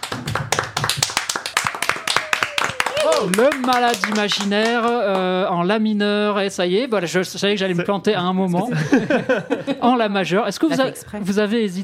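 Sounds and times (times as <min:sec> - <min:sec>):
crowd applauding: 0:00.0 - 0:05.4
faint voice cheering: 0:01.8 - 0:03.7
speech: 0:03.2 - 0:11.8
laughter: 0:08.6 - 0:10.0.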